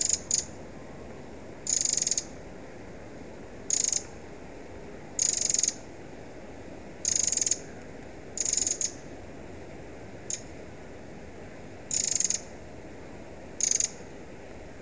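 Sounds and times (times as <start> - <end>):
Eurasian wren giving buzzy rattling calls: 0.0 - 0.5, 1.7 - 2.3, 3.7 - 4.1, 5.2 - 5.8, 7.0 - 7.6, 8.4 - 9.0, 10.3 - 10.5, 11.9 - 12.5, 13.6 - 14.0
background hiss: 0.0 - 14.8.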